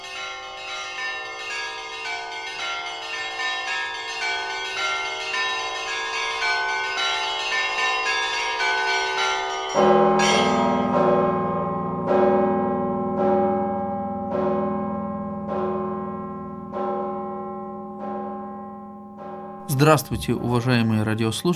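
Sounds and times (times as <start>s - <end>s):
church bells pealing: 0.0s - 21.5s
speech: 9.8s - 10.0s, 19.9s - 21.5s.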